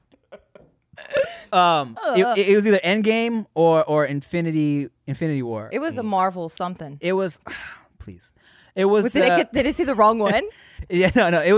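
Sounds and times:
person burping: 1.0 - 2.4
speech: 1.5 - 11.5.

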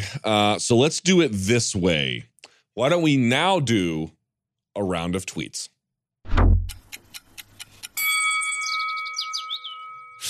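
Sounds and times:
speech: 0.1 - 4.2, 4.8 - 5.7
low whoosh-thump: 6.3 - 6.8
clock ticks: 6.6 - 8.0
bright sustained chime with descending shimmer: 8.0 - 10.2.

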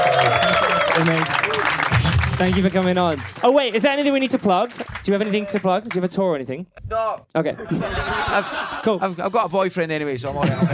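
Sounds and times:
faint audience voices and whoops: 0.0 - 1.7
audience applause: 0.0 - 6.1
speech: 1.0 - 1.5, 2.4 - 10.7
laughter: 7.5 - 9.5, 10.3 - 10.7.

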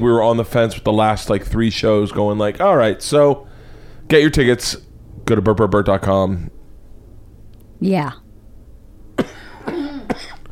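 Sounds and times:
speech: 0.0 - 3.5, 4.1 - 6.6, 7.8 - 8.2
sharp harsh coughs with a raspy throaty wheeze: 9.2 - 10.5.

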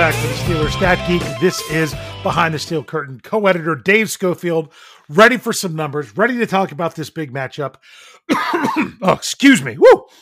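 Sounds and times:
speech: 0.1 - 10.2
man clearing throat: 8.3 - 9.2
man coughing: 8.3 - 9.2.

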